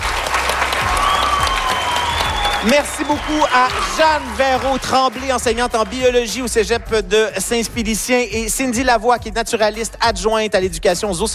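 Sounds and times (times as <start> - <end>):
audience applause: 0.0 - 6.6
speech: 2.6 - 11.3.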